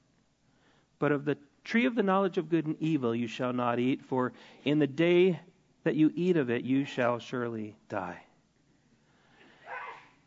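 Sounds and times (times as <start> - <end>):
speech: 1.0 - 8.3
person sneezing: 9.5 - 10.2.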